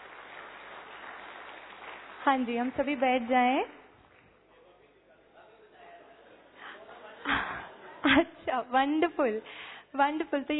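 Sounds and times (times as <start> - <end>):
crowd applause: 0.0 - 4.2
speech: 2.2 - 3.8, 8.7 - 10.5.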